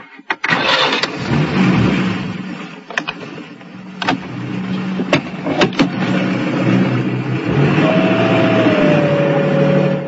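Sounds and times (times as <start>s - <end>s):
car engine starting and pulling away: 0.2s - 10.0s
sharp clunks and clicks: 5.0s - 6.0s.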